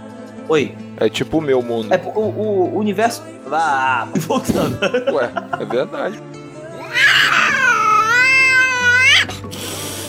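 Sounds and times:
speech: 0:00.5 - 0:06.4
laughter: 0:03.7 - 0:06.2
cat meowing: 0:06.8 - 0:09.3.

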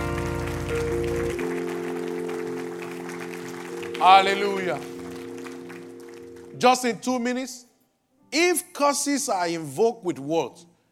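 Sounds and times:
audience clapping: 0:00.0 - 0:06.9
sustained keyboard or organ chords: 0:00.0 - 0:08.7
speech: 0:04.0 - 0:04.9, 0:06.6 - 0:07.7, 0:08.3 - 0:10.7.

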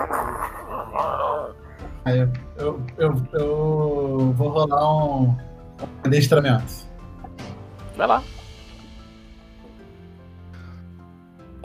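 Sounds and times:
person imitating dog growl: 0:00.0 - 0:01.7
speech: 0:02.1 - 0:03.8, 0:04.4 - 0:06.9, 0:08.0 - 0:08.4.

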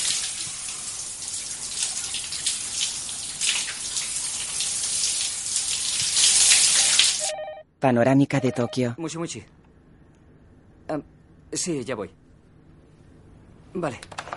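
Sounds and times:
water running from a shower: 0:00.0 - 0:07.3
speech: 0:07.8 - 0:09.6, 0:10.9 - 0:12.2, 0:13.7 - 0:14.2.

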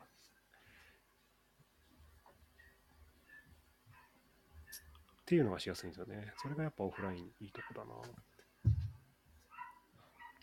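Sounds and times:
neighbor's dog barking: 0:03.3 - 0:04.2, 0:06.4 - 0:07.9, 0:09.5 - 0:10.4
speech: 0:05.3 - 0:08.3.

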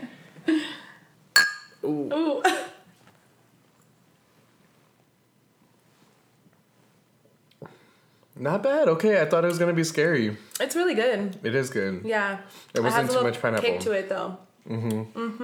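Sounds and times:
drinking glasses clinking in a toast: 0:01.4 - 0:01.9
speech: 0:01.9 - 0:02.6, 0:08.4 - 0:15.4.

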